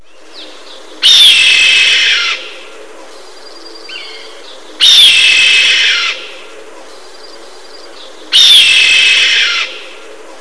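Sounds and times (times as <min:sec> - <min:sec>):
red-tailed hawk calling: 0:01.0 - 0:02.7, 0:03.9 - 0:06.4, 0:08.2 - 0:10.0.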